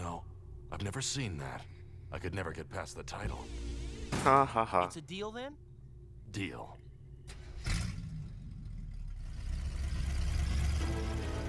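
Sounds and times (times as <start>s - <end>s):
speech: 0.8s - 3.6s, 4.2s - 5.6s, 6.3s - 6.8s
rough rattly old car engine idling and revving: 7.3s - 11.4s.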